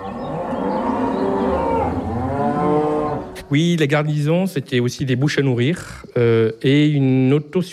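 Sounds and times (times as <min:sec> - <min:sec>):
cow mooing: 0:00.0 - 0:03.4
speech: 0:03.5 - 0:07.7.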